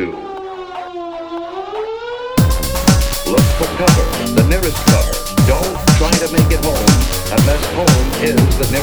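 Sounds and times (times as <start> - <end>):
warning siren wailing with a slowly rising tone: 0.0 - 8.8
loud burst of noise: 2.4 - 8.8
speech: 4.7 - 8.8.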